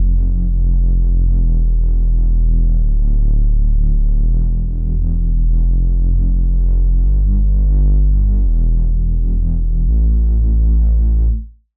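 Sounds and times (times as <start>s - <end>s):
synth bass: 0.0s - 11.7s.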